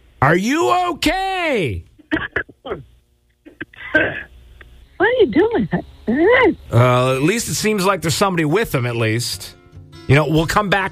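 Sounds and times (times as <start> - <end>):
speech: 0.2 - 2.2, 3.9 - 4.2, 5.2 - 10.9
man clearing throat over a phone line: 2.0 - 2.8, 3.5 - 4.3
man coughing over a muffled phone line: 2.0 - 2.8, 3.5 - 4.3.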